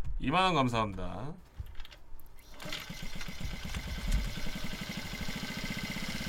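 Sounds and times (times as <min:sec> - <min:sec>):
speech: 0:00.2 - 0:01.5
Honda Monkey 50 motorcycle small engine running: 0:02.5 - 0:06.2.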